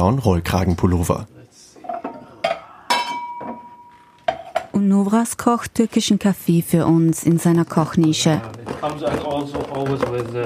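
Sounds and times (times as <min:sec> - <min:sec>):
speech: 0:00.0 - 0:01.4, 0:04.9 - 0:10.4
glasses clinking as they are taken from a dish cupboard: 0:01.8 - 0:04.7.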